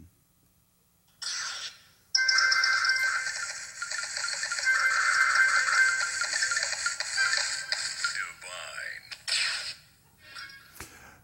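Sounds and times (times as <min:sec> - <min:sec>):
bright chiming jingle from a mobile match-three puzzle video game: 0:02.2 - 0:08.4.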